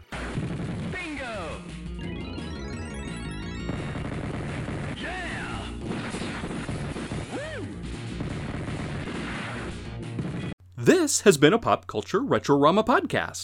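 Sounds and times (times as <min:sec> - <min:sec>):
arcade video game crashing explosions: 0:00.0 - 0:01.2, 0:02.8 - 0:10.6
arcade video game synthesized tones: 0:02.0 - 0:05.0
arcade video game electronic gunfire bursts: 0:02.8 - 0:07.4, 0:08.0 - 0:10.5
speech: 0:10.8 - 0:13.4.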